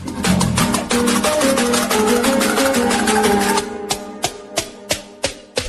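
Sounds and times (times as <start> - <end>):
Arabic music ringtone: 0.4 - 4.8.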